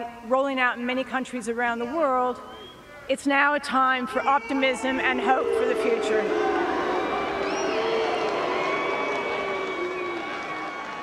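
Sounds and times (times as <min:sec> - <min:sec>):
speech: 0:00.0 - 0:06.6
large crowd booing: 0:04.0 - 0:11.0.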